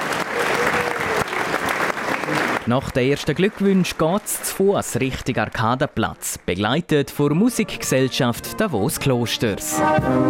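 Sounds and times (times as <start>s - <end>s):
crowd applauding at a train station in Davos: 0.0s - 6.8s
speech: 2.7s - 10.2s.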